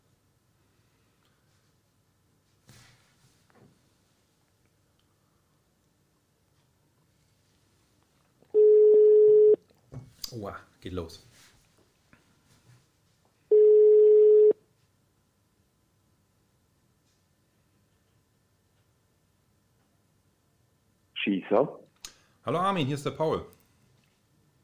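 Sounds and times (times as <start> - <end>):
loud telephone call ringback tones: 8.6 - 9.6, 13.5 - 14.6
speech: 10.4 - 11.5, 21.5 - 21.8, 22.4 - 23.6.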